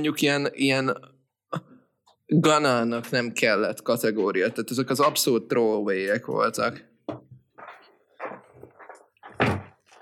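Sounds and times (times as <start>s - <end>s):
speech: 0.0s - 1.7s, 2.3s - 7.3s
door being swung and pushed shut: 9.3s - 9.8s.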